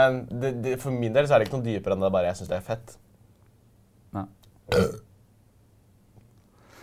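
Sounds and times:
speech: 0.0s - 3.1s, 4.1s - 5.1s
person burping: 4.7s - 5.1s.

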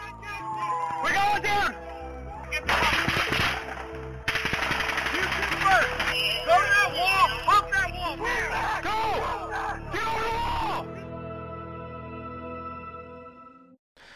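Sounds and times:
agitated people shouting: 0.0s - 3.6s, 5.0s - 11.0s
gunshots on a police body camera: 2.6s - 6.5s.

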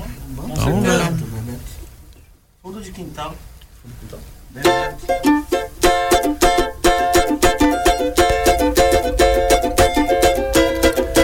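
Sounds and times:
speech: 2.9s - 5.7s
recorded samba song with brisk percussion and bright melodic instruments: 4.6s - 11.2s.

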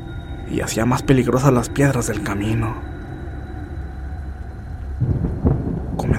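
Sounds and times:
speech: 0.5s - 2.9s
deep rolling thunder rumbling at night: 4.5s - 6.1s
steady hiss of rain in a night thunderstorm: 4.5s - 6.1s.

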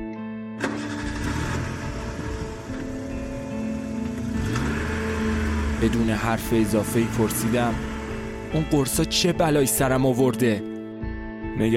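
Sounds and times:
large SUV engine cranking and starting: 0.6s - 8.5s
speech: 5.8s - 7.9s, 8.5s - 10.7s, 11.6s - 11.7s.

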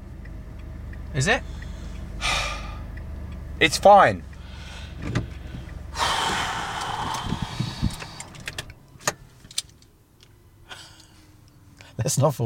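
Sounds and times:
automatic car engine roaring and stalling in a car park: 0.0s - 11.1s
speech: 1.2s - 1.6s, 3.6s - 4.3s, 12.1s - 12.4s
clicks and knocks inside the vehicle: 5.0s - 9.7s.

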